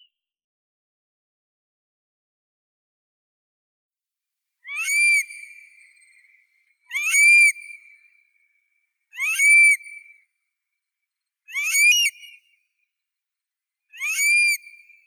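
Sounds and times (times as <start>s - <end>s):
Burhinus oedicnemus calling: 4.7s - 8.3s, 9.1s - 10.2s, 11.5s - 12.5s, 14.0s - 15.0s.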